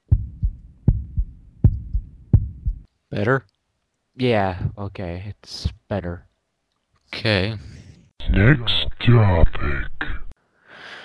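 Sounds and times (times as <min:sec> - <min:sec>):
low rumble: 0:00.0 - 0:02.8
steady lub-dub heartbeat thumping: 0:00.0 - 0:02.9, 0:04.6 - 0:04.9
speech: 0:03.1 - 0:03.5, 0:04.2 - 0:06.3, 0:07.1 - 0:10.2.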